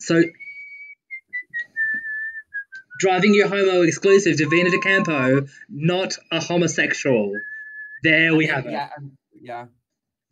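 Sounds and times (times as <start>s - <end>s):
speech: 0.0s - 0.4s, 3.0s - 9.8s
person whistling: 0.4s - 3.1s, 4.4s - 5.4s, 7.4s - 8.0s.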